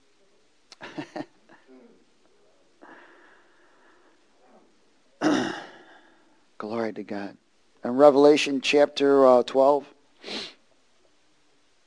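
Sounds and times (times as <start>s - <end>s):
faint noise: 0.0s - 11.8s
sneeze: 5.2s - 5.8s
speech: 6.9s - 10.5s.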